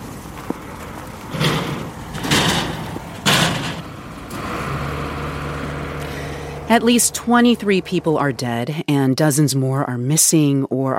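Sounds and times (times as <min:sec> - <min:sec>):
rescue crews digging through rubble after a cruise missile strike: 0:00.4 - 0:05.5
low hum: 0:00.8 - 0:08.8
speech: 0:06.7 - 0:10.9.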